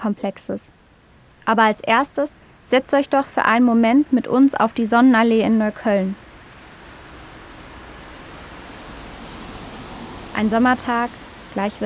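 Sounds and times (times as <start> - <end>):
speech: 0.0 - 0.8, 1.5 - 6.2, 10.4 - 11.8
street traffic of cars, buses and bicycles on a summer day before rain: 0.0 - 11.8.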